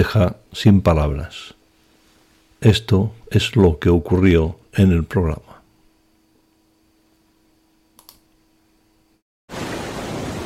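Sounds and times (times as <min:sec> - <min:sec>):
speech: 0:00.0 - 0:01.6, 0:02.6 - 0:05.5
faint hum: 0:00.0 - 0:09.2
soft clicks: 0:07.9 - 0:08.4
sea waves roaring: 0:09.5 - 0:10.4.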